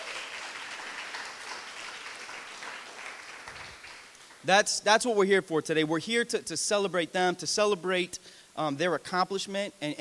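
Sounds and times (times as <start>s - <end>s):
audience applause: 0.0s - 4.4s
speech: 4.4s - 10.0s.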